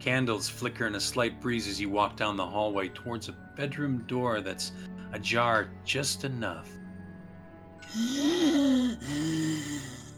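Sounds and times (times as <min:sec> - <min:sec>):
speech: 0:00.0 - 0:06.8, 0:07.9 - 0:10.0
wheezing from behind a bedroom door: 0:07.8 - 0:10.1.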